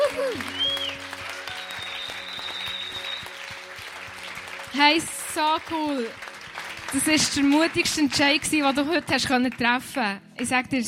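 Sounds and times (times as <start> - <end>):
audience applause: 0.0 - 9.8
speech: 4.8 - 6.2, 6.9 - 10.8.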